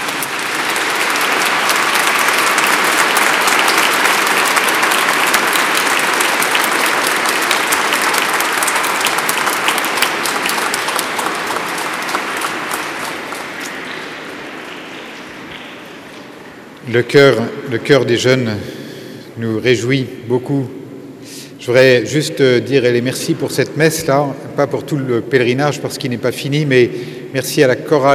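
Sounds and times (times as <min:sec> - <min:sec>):
crowd applauding: 0:00.0 - 0:16.4
speech: 0:16.9 - 0:18.8, 0:19.4 - 0:20.8, 0:21.6 - 0:28.1.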